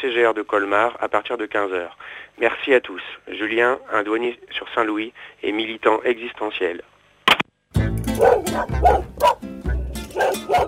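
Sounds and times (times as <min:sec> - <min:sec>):
speech: 0:00.0 - 0:06.9, 0:08.6 - 0:09.3
dog barking with throaty woofs: 0:08.1 - 0:09.4, 0:10.1 - 0:10.6.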